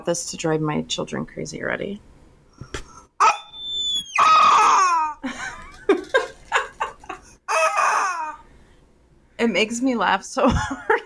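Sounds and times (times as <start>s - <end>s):
speech: 0.0s - 2.8s, 9.4s - 11.0s
rubber chicken toy squawking: 3.2s - 5.2s
laughter: 5.2s - 8.4s.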